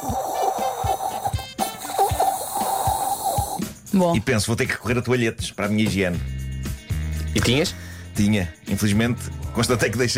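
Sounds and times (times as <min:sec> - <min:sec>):
voice imitating a sputtering empty shower with hissing and gurgling mouth noises: 0:00.0 - 0:03.6
speech: 0:03.9 - 0:06.3, 0:07.3 - 0:10.1.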